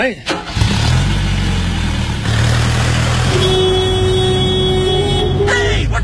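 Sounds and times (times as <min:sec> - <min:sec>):
car driven fast and recklessly with engine roaring: 0:00.0 - 0:06.0
sustained car horn tone: 0:03.1 - 0:06.0.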